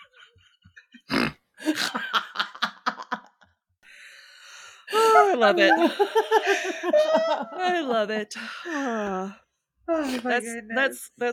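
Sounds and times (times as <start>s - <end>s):
person laughing choppily: 0.0s - 3.4s, 4.9s - 7.7s
person vocally imitating a reverse fart: 1.1s - 1.4s
speech: 5.4s - 11.3s.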